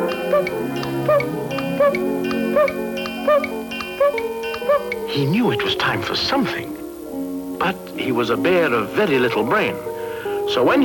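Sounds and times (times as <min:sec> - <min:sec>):
cuckoo-style clock chirping call: 0:00.0 - 0:06.6
sustained tonal background: 0:00.0 - 0:10.8
speech: 0:00.4 - 0:06.8, 0:07.6 - 0:09.9, 0:10.5 - 0:10.8.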